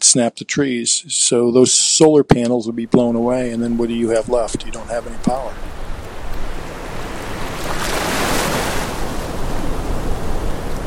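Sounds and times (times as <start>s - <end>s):
speech: 0.1s - 5.9s
ocean waves breaking on a shore: 3.3s - 10.8s.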